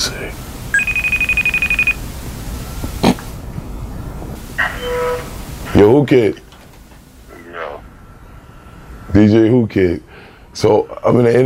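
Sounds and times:
outgoing phone call ringing tone: 0:00.7 - 0:02.0
short beep: 0:00.8 - 0:02.0
speech: 0:05.8 - 0:06.4, 0:09.2 - 0:11.4.

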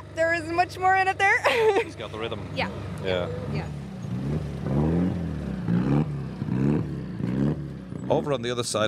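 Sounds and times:
speech: 0:00.4 - 0:04.5, 0:08.1 - 0:08.8
rally car engine revving as the car pulls in: 0:02.1 - 0:08.8.

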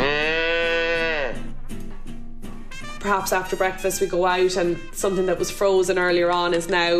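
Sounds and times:
cattle lowing indoors: 0:00.0 - 0:01.4
cow mooing in a shed: 0:00.0 - 0:01.4
speech: 0:03.0 - 0:06.9.

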